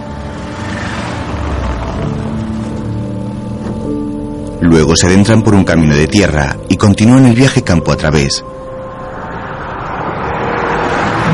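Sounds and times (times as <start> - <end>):
car engine droning while driving through rural countryside: 0.0 - 5.7, 8.4 - 11.3
car road rumble: 0.0 - 11.3
speech: 4.6 - 8.6.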